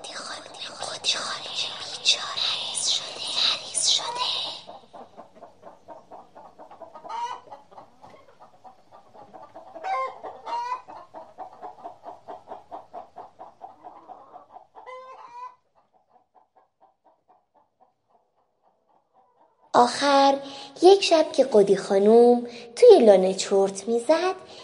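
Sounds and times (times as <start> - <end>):
group of hens clucking: 2.8 - 19.7
speech: 19.8 - 24.6.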